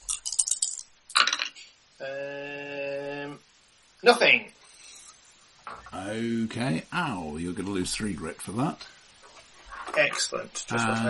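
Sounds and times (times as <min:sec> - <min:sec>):
dice clattering and rattling across a hard surface: 0:00.1 - 0:01.5
speech: 0:02.0 - 0:02.5, 0:04.0 - 0:04.6, 0:05.9 - 0:09.0, 0:10.0 - 0:11.0.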